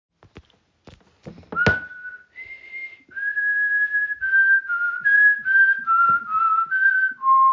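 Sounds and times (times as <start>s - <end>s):
person whistling a fugue: 1.6s - 7.5s.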